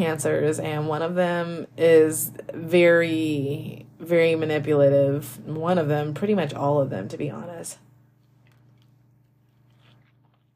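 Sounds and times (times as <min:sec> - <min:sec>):
speech: 0:00.0 - 0:07.8
low electrical hum: 0:00.0 - 0:10.5
person sipping water: 0:08.1 - 0:10.5.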